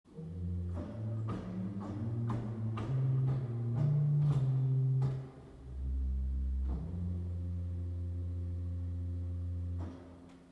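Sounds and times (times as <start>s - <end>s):
organ Octavbass 8 stop: 0.1s - 10.5s.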